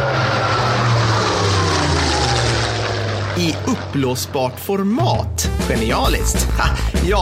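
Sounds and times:
jet fighter engine roaring while flying past: 0.0s - 4.9s
speech: 3.4s - 7.2s.

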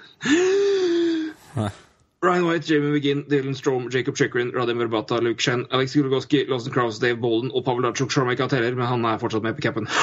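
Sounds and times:
breathy release: 0.0s - 2.1s
speech: 1.6s - 10.0s.

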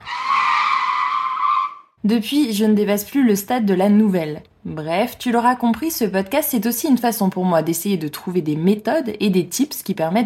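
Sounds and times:
car tires screeching in a long skid as the brakes lock: 0.0s - 1.9s
speech: 2.0s - 10.2s.

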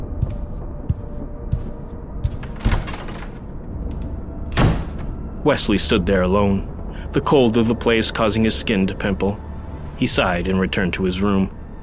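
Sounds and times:
bedroom door swinging shut: 2.4s - 5.4s
speech: 5.4s - 11.6s.

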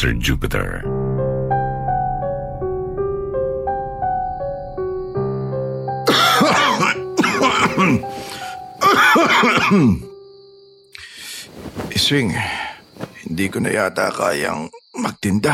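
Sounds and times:
speech: 0.0s - 0.9s, 7.8s - 8.4s, 9.2s - 10.1s, 12.0s - 12.6s, 13.3s - 15.5s
gentle piano notes: 0.8s - 10.2s
person with tuberculosis coughing hard: 6.1s - 10.1s.

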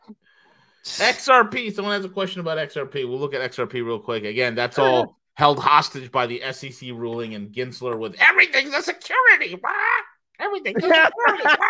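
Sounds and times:
speech: 0.8s - 11.6s
human voice mimicking a squawking parrot: 9.5s - 10.2s
laughter: 10.6s - 11.6s.

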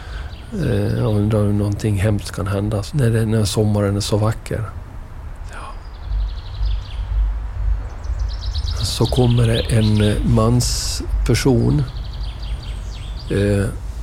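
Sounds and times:
birds chirping on a summer morning: 0.0s - 14.0s
speech: 0.5s - 4.8s, 9.0s - 12.0s, 13.3s - 13.8s
heavy low droning rumble: 4.8s - 14.0s.

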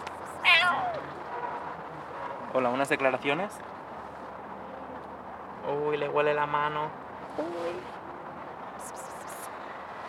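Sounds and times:
cat meowing: 0.4s - 1.0s
speech: 2.5s - 3.7s, 5.7s - 8.0s.

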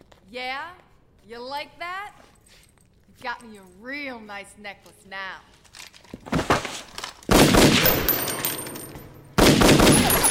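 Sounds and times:
speech: 0.3s - 5.6s
gunshots fired at someone: 7.3s - 8.5s, 9.4s - 10.3s.

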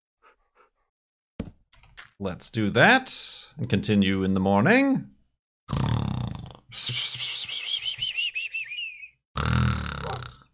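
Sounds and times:
speech: 2.2s - 5.9s, 6.7s - 7.9s
voice imitating snoring: 5.7s - 6.7s, 9.4s - 10.5s.

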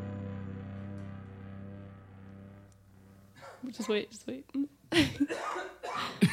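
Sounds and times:
person coughing: 3.4s - 3.9s, 4.9s - 6.3s
speech: 3.6s - 6.2s.

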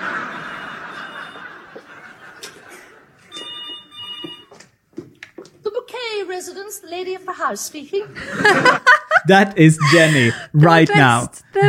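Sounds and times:
telephone ringing with an electronic trill: 0.0s - 1.8s, 3.2s - 4.7s
laughter: 0.0s - 3.3s, 8.1s - 11.6s
speech: 6.4s - 11.6s.

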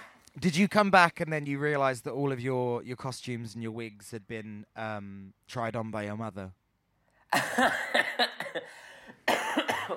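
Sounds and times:
speech: 0.4s - 6.6s, 7.3s - 9.9s
harsh raspy smoker's cough: 7.3s - 9.9s.

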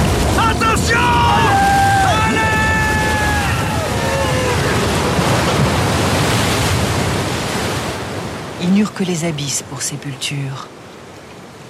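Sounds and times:
heavy storm waves crashing at sea: 0.0s - 8.7s
rising wind at sea: 0.0s - 11.6s
speech: 9.0s - 10.8s.

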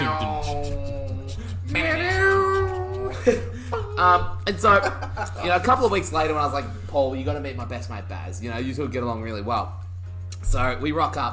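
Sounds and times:
person imitating a cat meow: 0.0s - 3.2s
laughter: 1.4s - 6.4s
speech: 3.2s - 9.8s, 10.4s - 11.3s.

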